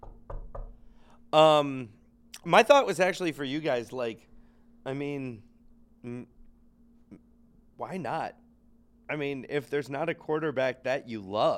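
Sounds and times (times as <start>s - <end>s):
knocking on wood: 0.0s - 0.8s
speech: 1.3s - 6.4s, 7.8s - 8.4s, 9.1s - 11.5s.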